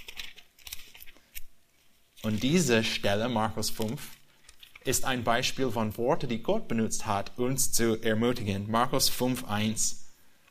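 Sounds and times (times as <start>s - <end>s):
thin Bible pages rustling and flipping: 0.0s - 4.9s
speech: 2.2s - 4.2s, 4.8s - 10.0s.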